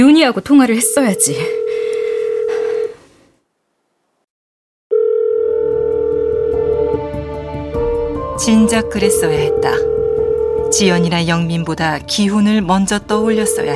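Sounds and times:
speech: 0:00.2 - 0:01.6, 0:08.4 - 0:10.0, 0:10.7 - 0:13.7
electronic telephone ringback tone after dialing: 0:00.6 - 0:03.0, 0:04.9 - 0:07.0, 0:09.1 - 0:11.1.

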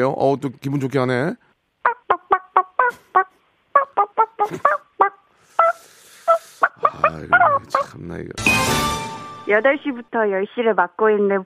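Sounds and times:
speech: 0:00.0 - 0:01.4, 0:04.5 - 0:04.8, 0:07.2 - 0:11.4
person imitating a chicken with clucking and squawk-like calls: 0:01.9 - 0:08.0.

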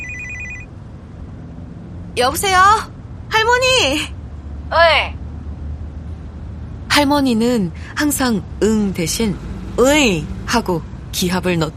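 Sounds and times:
phone ringing with a bright electronic tone: 0:00.0 - 0:00.7
road noise inside a car driving on a highway: 0:00.0 - 0:11.7
speech: 0:02.2 - 0:05.2, 0:07.0 - 0:11.7.

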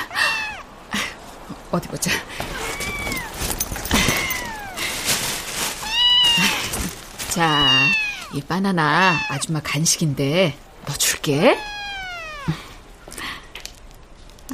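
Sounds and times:
cat meowing: 0:00.0 - 0:00.7, 0:02.5 - 0:03.4, 0:04.0 - 0:04.8, 0:05.8 - 0:06.8, 0:07.4 - 0:09.5, 0:11.4 - 0:12.6
speech: 0:01.7 - 0:02.6, 0:07.4 - 0:11.7.

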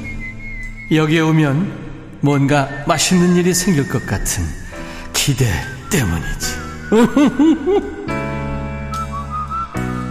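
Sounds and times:
full sustained instrumental backing: 0:00.0 - 0:10.1
whistled melody in gentle sliding notes: 0:00.0 - 0:10.1
speech: 0:00.9 - 0:04.6, 0:05.2 - 0:08.1
laughter: 0:06.9 - 0:08.2.

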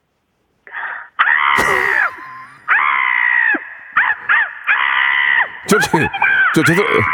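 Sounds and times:
person imitating a crow's caw on the phone: 0:00.7 - 0:07.1
laughter: 0:05.6 - 0:07.1
speech: 0:05.7 - 0:07.1.

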